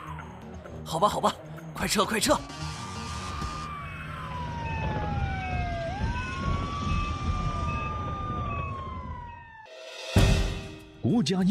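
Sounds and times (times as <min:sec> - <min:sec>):
fire engine siren wailing in rising and falling sweeps: 0:00.0 - 0:09.7
speech: 0:00.9 - 0:02.8, 0:11.2 - 0:11.4
low traffic rumble: 0:02.5 - 0:09.6.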